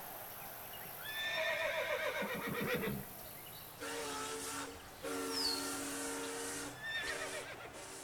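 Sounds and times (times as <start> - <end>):
horse giving a long wavering whinny: 1.0 - 3.1, 6.8 - 7.7
train horn sounding in sustained blasts: 3.6 - 8.0.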